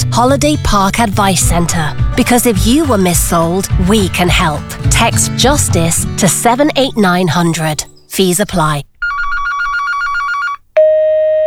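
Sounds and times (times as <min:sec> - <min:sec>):
speech: 0:00.2 - 0:08.9
telephone ringing unanswered with a warbling trill: 0:09.0 - 0:11.4.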